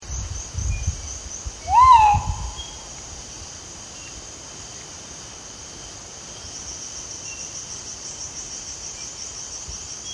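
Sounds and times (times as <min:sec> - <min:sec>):
constant high insect drone: 0:00.0 - 0:10.1
crinkle-collared manucode slurred whistle call: 0:01.6 - 0:02.9.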